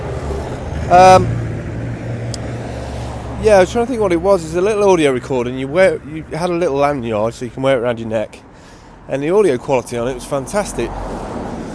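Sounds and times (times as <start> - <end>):
Subaru car passing by outside: 0.0 - 4.3, 10.6 - 11.7
speech: 0.9 - 1.4, 3.4 - 8.5, 9.1 - 11.3.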